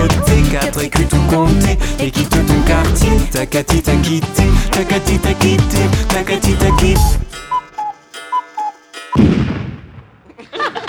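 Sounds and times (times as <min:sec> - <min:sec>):
speech: 0:00.7 - 0:07.3, 0:09.2 - 0:09.6
alarm clock ringing: 0:06.4 - 0:09.3
faint chirps: 0:06.7 - 0:08.8
laughter: 0:10.2 - 0:10.8.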